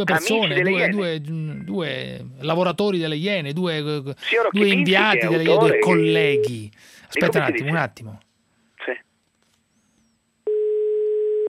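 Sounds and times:
speech: 0:00.0 - 0:08.2
telephone ringback tone of an unanswered call: 0:10.5 - 0:11.4.

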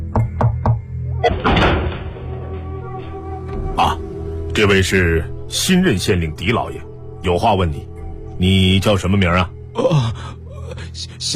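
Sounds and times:
knocking on the door of a thatched cottage: 0:00.1 - 0:00.8
speech: 0:03.8 - 0:10.4, 0:11.0 - 0:11.3.

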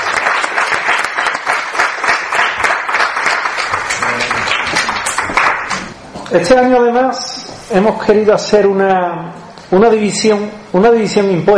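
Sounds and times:
audience applause at an awards ceremony: 0:00.0 - 0:05.9
speech: 0:06.3 - 0:11.5.

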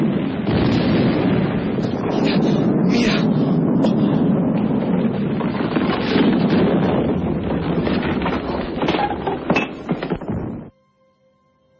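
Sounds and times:
explosions rumbling: 0:00.0 - 0:10.7.

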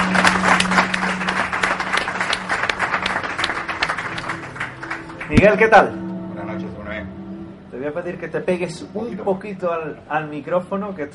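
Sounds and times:
audience applause at a live event in Seville: 0:00.0 - 0:05.8
speech: 0:05.3 - 0:06.0, 0:07.8 - 0:11.1.

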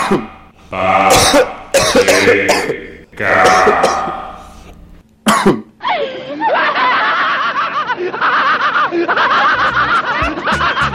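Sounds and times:
harsh coughs: 0:00.0 - 0:00.4, 0:01.1 - 0:04.6, 0:05.3 - 0:05.7
person clearing throat: 0:00.0 - 0:05.7
speech: 0:00.1 - 0:04.2
laughter: 0:05.8 - 0:10.9.

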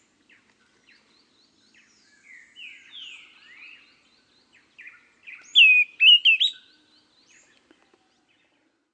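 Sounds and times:
Greenish schiffornis Schiffornis virescens singing whistled phrase: 0:05.3 - 0:06.7.

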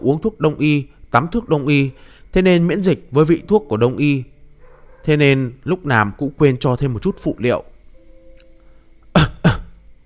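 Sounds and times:
speech: 0:00.0 - 0:04.3, 0:05.0 - 0:07.7
man giving short dry coughs out of embarrassment: 0:09.2 - 0:09.8.

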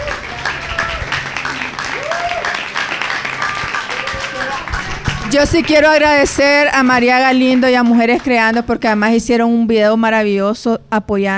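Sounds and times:
audience applause at a debate: 0:00.0 - 0:08.7
speech: 0:05.3 - 0:11.3.

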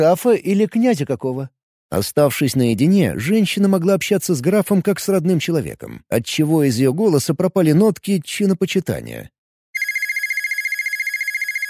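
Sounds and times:
speech: 0:00.0 - 0:09.4
mobile phone ringing with a high electronic trill: 0:09.8 - 0:11.6.

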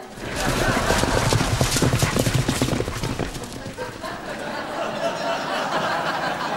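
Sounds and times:
horse hooves clip-clopping: 0:00.0 - 0:04.7
laughter: 0:00.0 - 0:06.5.

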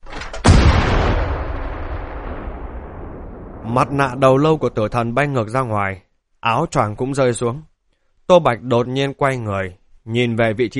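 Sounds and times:
gunshot from a pulled trigger: 0:00.2 - 0:05.0
speech: 0:03.7 - 0:07.7, 0:08.3 - 0:10.7.

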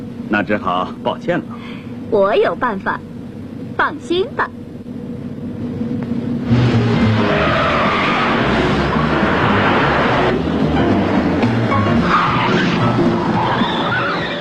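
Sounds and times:
roaring car engines in a car chase: 0:00.0 - 0:14.3
speech: 0:00.3 - 0:03.1, 0:03.8 - 0:04.6
skidding tyres in a car chase: 0:04.4 - 0:14.3.

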